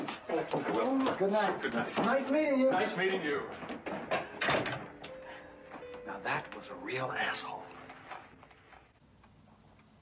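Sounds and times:
speech: 0.4s - 3.8s, 6.1s - 7.6s
door opening and closing: 3.6s - 5.2s.

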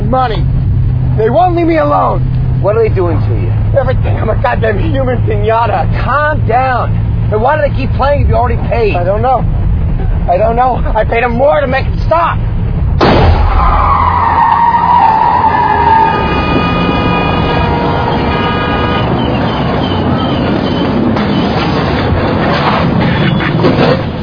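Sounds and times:
speech: 0.1s - 0.5s, 1.2s - 9.6s, 10.3s - 12.5s
car skidding and grinding on a flat tire: 13.3s - 24.1s.

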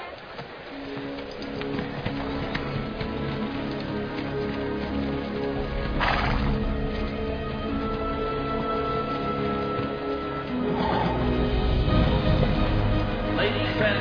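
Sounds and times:
hooves clip-clopping: 0.0s - 13.9s
horses neighing: 1.4s - 11.6s.

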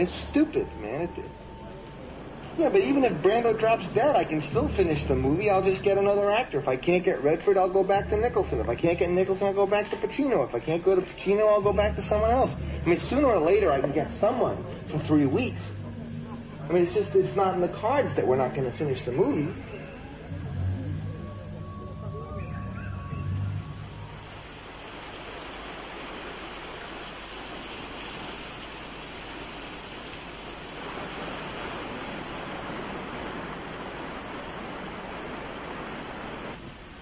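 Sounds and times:
speech: 0.0s - 1.4s, 2.6s - 15.8s, 16.7s - 19.6s
low rumbling hum: 0.0s - 25.6s
heavy typhoon rain pouring down: 0.0s - 37.0s.

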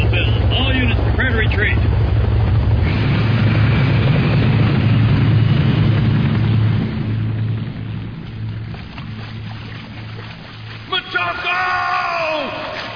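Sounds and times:
helicopters approaching at high speed: 0.0s - 12.9s.

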